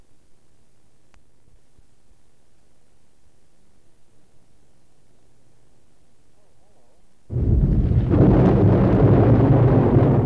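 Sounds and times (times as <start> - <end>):
deep rolling thunder: 7.3 - 10.2
pouring rain: 7.3 - 10.2.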